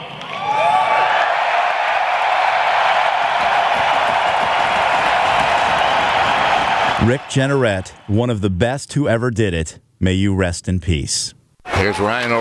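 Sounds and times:
big crowd roaring and cheering: 0:00.0 - 0:08.6, 0:11.6 - 0:12.3
speech: 0:07.0 - 0:12.3.

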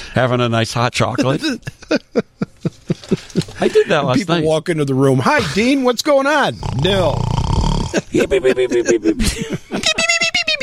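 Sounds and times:
speech: 0:00.2 - 0:02.4, 0:03.6 - 0:09.8
laughter: 0:01.1 - 0:03.9, 0:07.8 - 0:10.6
voice imitating a cartoonish snore: 0:06.6 - 0:08.1.

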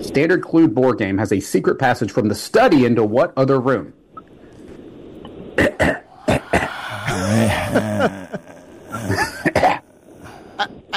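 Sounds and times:
speech: 0:00.1 - 0:04.0
person coughing in short bursts: 0:05.6 - 0:10.0
strained throaty vocal sound: 0:06.0 - 0:10.6.

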